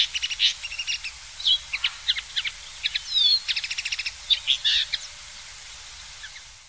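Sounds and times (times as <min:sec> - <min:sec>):
common linnet singing a fast jumble of chirps and trills: 0:00.0 - 0:05.2.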